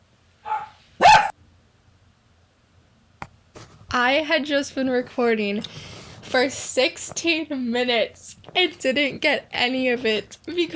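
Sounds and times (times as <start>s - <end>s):
dog barking: 0.4s - 1.4s
speech: 3.9s - 10.7s.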